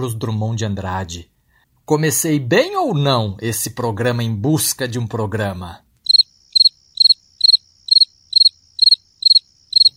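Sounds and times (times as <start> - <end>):
speech: 0.0 - 1.3, 1.9 - 5.8
cricket chirping sound effect: 6.0 - 9.9.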